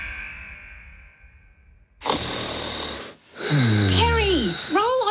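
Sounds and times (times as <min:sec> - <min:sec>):
person snoring with rasping inhale and snort: 0:02.0 - 0:04.9.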